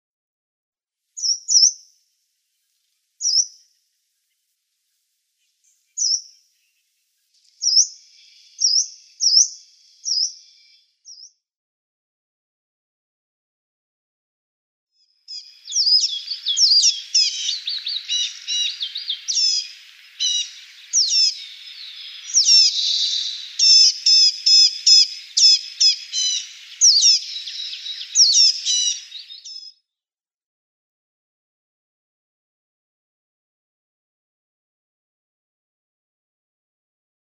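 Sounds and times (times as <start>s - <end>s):
Yellow-browed Warbler calls: 1.2s - 1.8s, 3.2s - 4.5s, 5.4s - 11.3s, 15.3s - 29.7s.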